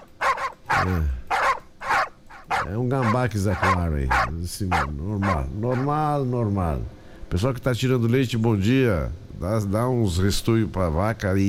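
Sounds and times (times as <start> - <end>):
dog barking in the morning on a farm: 0.0 - 6.0
speech: 0.8 - 1.2, 2.5 - 11.4.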